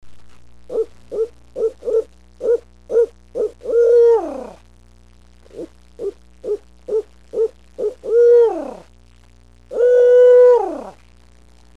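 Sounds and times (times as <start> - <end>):
low steady hum: 0.0 - 11.7
owl hooting: 0.7 - 4.6, 5.5 - 8.9, 9.7 - 11.0.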